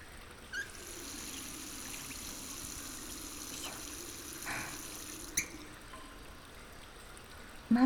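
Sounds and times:
carbonated spring water trickling and fizzing: 0:00.5 - 0:07.5
carbonated spring water splashing: 0:00.6 - 0:05.8.

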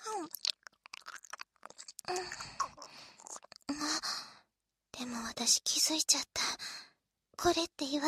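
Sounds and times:
person chewing chewy tapioca pearls: 0:00.0 - 0:03.7
speech: 0:00.2 - 0:00.5, 0:02.1 - 0:02.6, 0:05.4 - 0:06.6, 0:07.4 - 0:08.0.

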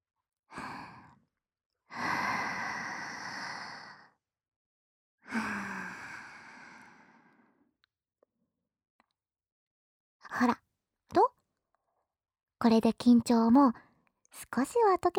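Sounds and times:
person breathing deeply in and out as a calming exercise: 0:01.9 - 0:04.2, 0:05.2 - 0:07.7
speech: 0:10.3 - 0:10.6, 0:12.6 - 0:15.1.

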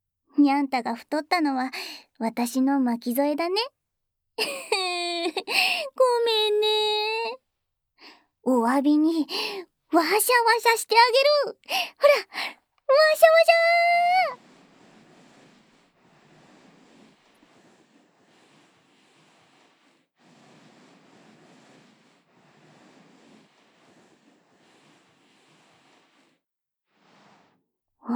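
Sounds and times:
speech: 0:00.4 - 0:03.8, 0:04.4 - 0:07.4, 0:08.0 - 0:14.5
cat purring while being petted: 0:12.1 - 0:26.4.

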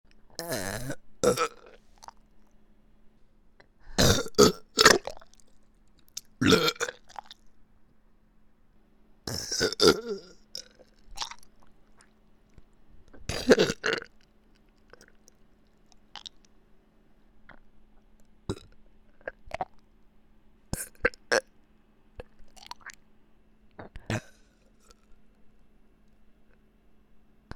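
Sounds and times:
burping: 0:00.4 - 0:01.7, 0:04.0 - 0:05.2, 0:06.4 - 0:07.3, 0:09.3 - 0:11.4, 0:13.3 - 0:14.1, 0:23.8 - 0:25.0.

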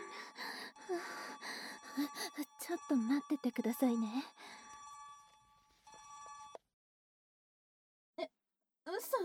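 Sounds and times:
smartphone ringing with bright electronic ringtone: 0:00.0 - 0:06.6
speech: 0:02.0 - 0:04.4.

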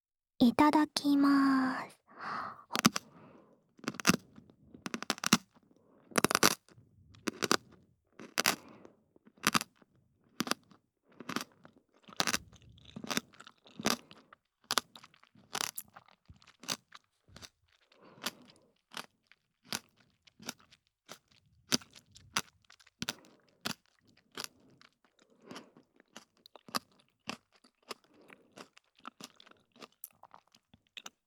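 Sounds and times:
speech: 0:00.4 - 0:03.0
crunching bites of Japanese pickles: 0:02.6 - 0:31.2.

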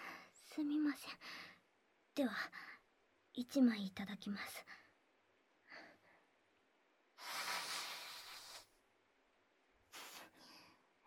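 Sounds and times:
speech: 0:00.5 - 0:01.5, 0:02.1 - 0:02.8, 0:03.3 - 0:04.9
person sniffling with a runny nose: 0:07.2 - 0:08.7, 0:09.9 - 0:10.4
snort-like pull of breath: 0:07.2 - 0:08.7.

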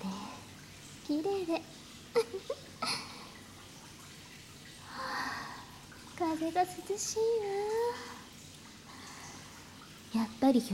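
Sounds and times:
hot bath water splashing and trickling in a bath: 0:00.0 - 0:10.7
speech: 0:01.1 - 0:03.2, 0:06.2 - 0:08.2, 0:10.1 - 0:10.7.

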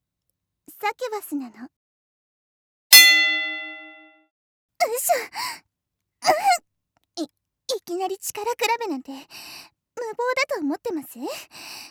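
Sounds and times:
speech: 0:00.8 - 0:01.8, 0:05.0 - 0:11.8
match gong struck before a bout: 0:03.0 - 0:04.1.

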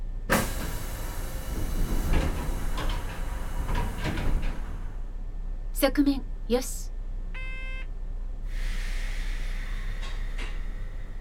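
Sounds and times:
low rumbling hum: 0:00.0 - 0:11.1
train doors sliding shut with a whoosh: 0:00.2 - 0:05.1, 0:08.6 - 0:11.1
speech: 0:05.8 - 0:06.9.

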